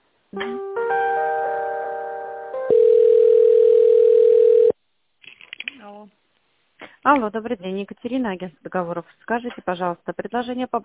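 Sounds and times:
speech: 0:00.3 - 0:01.0, 0:07.0 - 0:10.8
telephone sustained chord of several steady pitches: 0:02.7 - 0:04.8.

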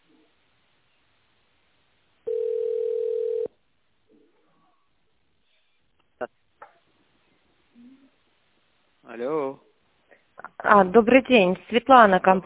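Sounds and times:
telephone dial tone while a number is dialed: 0:02.3 - 0:03.5
speech: 0:06.2 - 0:06.4, 0:09.0 - 0:09.7, 0:10.4 - 0:12.4.

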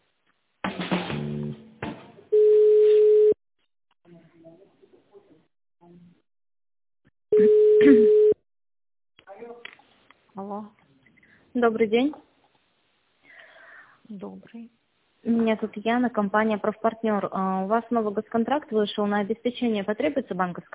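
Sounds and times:
ringback tone of a telephone call being connected: 0:02.4 - 0:03.4, 0:07.4 - 0:08.4
speech: 0:10.4 - 0:10.8, 0:11.6 - 0:12.2, 0:14.1 - 0:20.7.

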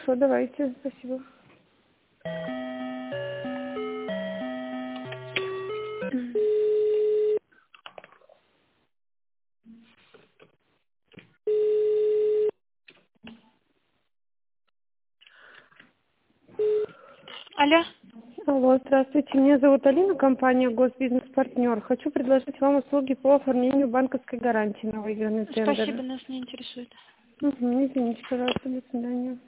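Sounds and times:
speech: 0:00.1 - 0:01.4, 0:18.7 - 0:29.4
telephone line tones during a call transfer: 0:02.3 - 0:07.4, 0:11.5 - 0:12.6, 0:16.6 - 0:17.1.

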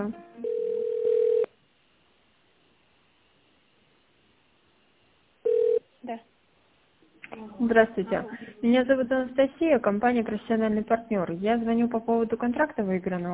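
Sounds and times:
speech: 0:00.0 - 0:00.3, 0:07.6 - 0:13.3
telephone line tones of a call being transferred: 0:00.4 - 0:01.5, 0:05.4 - 0:05.8.

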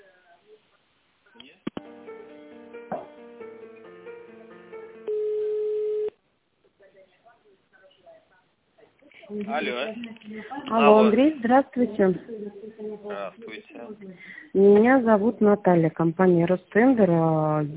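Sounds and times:
telephone line tones during an office call transfer: 0:05.0 - 0:06.1
speech: 0:09.4 - 0:17.7.

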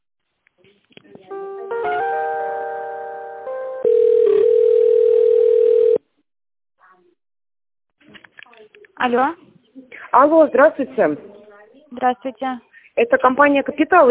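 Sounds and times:
telephone line chime-like tones while a call is being transferred: 0:03.8 - 0:06.0
speech: 0:09.0 - 0:09.4, 0:10.1 - 0:11.3, 0:12.0 - 0:14.0.

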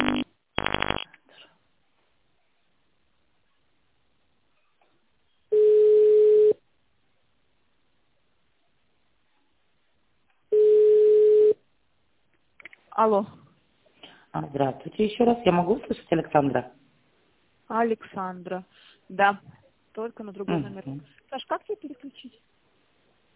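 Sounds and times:
telephone line ringing tones while calling a company: 0:00.0 - 0:01.0, 0:05.5 - 0:06.6, 0:10.5 - 0:11.6
speech: 0:13.0 - 0:13.4, 0:14.3 - 0:16.8, 0:17.7 - 0:22.5.

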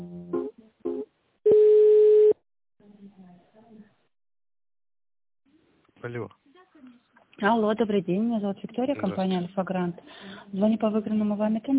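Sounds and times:
telephone line tone while a call is being transferred: 0:01.5 - 0:02.4
speech: 0:07.4 - 0:11.7.

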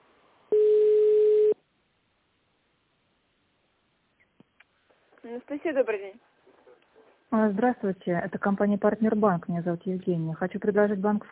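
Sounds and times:
telephone ringback tone while waiting for a company line to be answered: 0:00.5 - 0:01.6
speech: 0:05.3 - 0:06.3, 0:07.3 - 0:11.3.

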